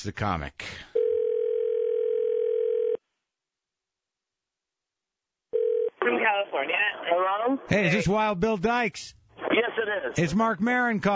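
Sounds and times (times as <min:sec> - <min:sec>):
speech: 0:00.0 - 0:00.9, 0:06.0 - 0:11.1
electronic telephone ringback tone calling a cell phone: 0:01.0 - 0:03.0, 0:05.6 - 0:06.0.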